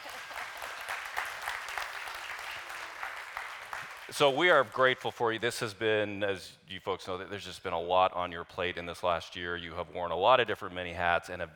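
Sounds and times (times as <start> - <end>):
audience applause: 0.0 - 5.0
speech: 4.1 - 11.5.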